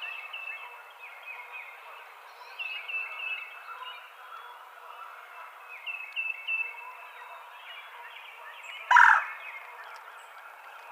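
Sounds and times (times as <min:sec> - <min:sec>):
birds twittering: 0:00.0 - 0:10.8
Red-bellied woodpecker rolling call: 0:08.9 - 0:09.4.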